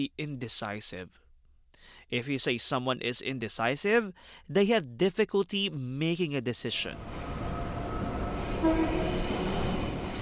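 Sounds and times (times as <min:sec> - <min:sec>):
speech: 0:00.0 - 0:01.2, 0:01.8 - 0:07.4, 0:08.6 - 0:09.3
train rolling on rails: 0:07.0 - 0:10.1
faint horn-like tone: 0:07.6 - 0:10.0.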